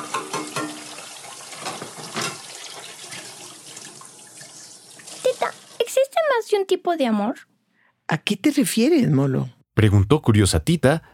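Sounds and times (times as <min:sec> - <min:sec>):
tap water running while dishes are rinsed: 0:00.0 - 0:06.0
speech: 0:06.6 - 0:07.5, 0:08.1 - 0:11.1.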